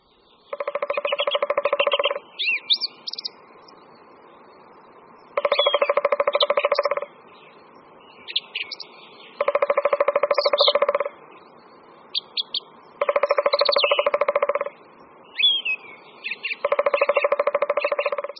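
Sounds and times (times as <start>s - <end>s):
three-toed woodpecker drumming: 0.5s - 2.2s, 5.3s - 7.1s, 9.4s - 11.2s, 12.4s - 14.8s, 16.5s - 18.3s
soft high bird chirps: 0.5s - 3.7s, 5.3s - 7.1s, 8.2s - 11.1s, 12.1s - 18.3s.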